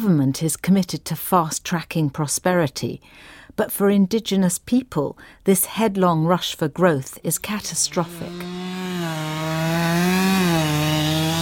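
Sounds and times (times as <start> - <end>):
speech: 0.0 - 8.8
chainsaw cutting tree trunks while clearing forest in Malaysia: 7.6 - 11.4.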